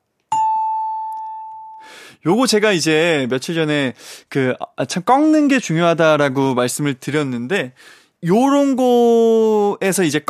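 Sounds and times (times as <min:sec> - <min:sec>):
bright bell-like correct-answer chime: 0:00.3 - 0:01.9
speech: 0:02.1 - 0:10.2.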